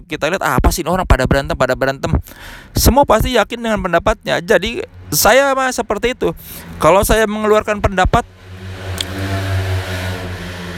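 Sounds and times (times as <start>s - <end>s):
speech: 0.1s - 8.4s
motorcycle engine heard from inside a parked car: 2.4s - 10.7s.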